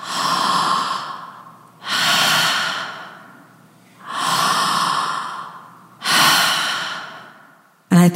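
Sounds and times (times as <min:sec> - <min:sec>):
person imitating heavy raspy breathing: 0:00.0 - 0:07.8.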